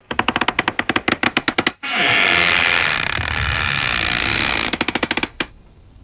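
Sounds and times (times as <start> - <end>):
high-pitched stuttering wooden creak: 0.0 - 5.7.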